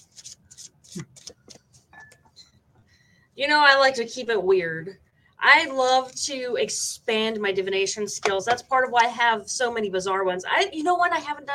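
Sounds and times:
deck of children's story-game cards being shuffled by hand: 0:00.0 - 0:01.9
speech: 0:03.4 - 0:11.5.

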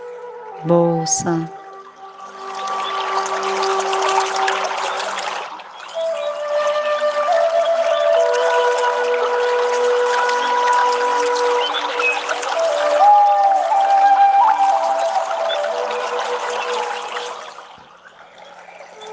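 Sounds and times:
river water flowing: 0:00.0 - 0:19.1
sustained soft musical tones: 0:00.0 - 0:19.1
speech: 0:00.6 - 0:01.6.

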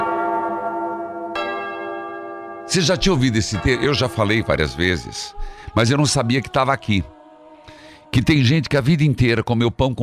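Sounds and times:
church bell ringing: 0:00.0 - 0:06.9
speech: 0:02.7 - 0:07.2, 0:08.1 - 0:10.0.

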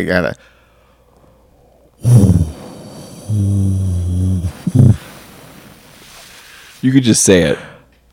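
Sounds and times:
speech: 0:00.0 - 0:00.6, 0:02.0 - 0:02.6, 0:03.3 - 0:05.0, 0:06.8 - 0:07.7
person vocally imitating airplane cabin droning hum: 0:02.0 - 0:05.5.

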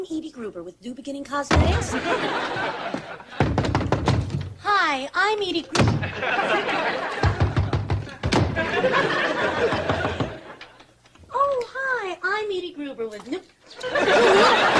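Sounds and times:
speech: 0:00.1 - 0:07.4, 0:08.6 - 0:10.0, 0:12.1 - 0:14.7
knocks and thumps: 0:01.5 - 0:02.0, 0:02.9 - 0:04.6, 0:05.7 - 0:06.3, 0:07.1 - 0:08.7, 0:09.7 - 0:10.6
door slamming shut: 0:01.5 - 0:02.1, 0:03.3 - 0:04.6, 0:05.7 - 0:06.3, 0:07.2 - 0:08.8
laughter: 0:01.6 - 0:03.5, 0:05.9 - 0:10.9, 0:13.7 - 0:14.7.

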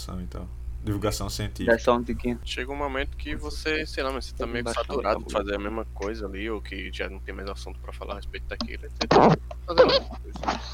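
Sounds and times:
speech: 0:00.0 - 0:10.7
squeaky fart bursts: 0:09.0 - 0:10.2.

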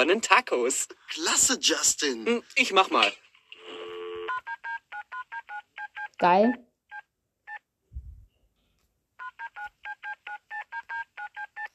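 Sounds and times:
speech: 0:00.0 - 0:03.2, 0:06.2 - 0:06.7
telephone keypad dialing tones: 0:03.9 - 0:06.2, 0:06.9 - 0:07.6, 0:09.2 - 0:11.7.

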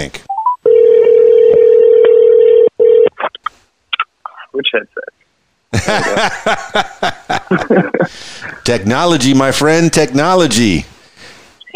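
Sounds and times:
speech: 0:00.0 - 0:00.2, 0:04.7 - 0:05.1, 0:05.7 - 0:10.9
telephone dial tone as a call is placed: 0:00.7 - 0:03.1
laughter: 0:05.8 - 0:08.7.

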